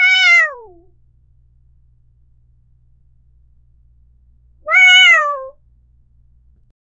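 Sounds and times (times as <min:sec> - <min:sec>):
tiny weak domestic cat kitten giving loud high mews: 0:00.0 - 0:01.0, 0:04.6 - 0:05.6
faint hum: 0:00.0 - 0:06.7.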